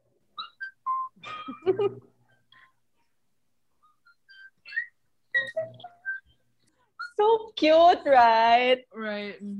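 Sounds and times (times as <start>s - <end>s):
bright whistled melody in a song intro: 0.3s - 1.5s, 3.8s - 7.2s
speech: 1.8s - 2.1s, 7.6s - 9.5s.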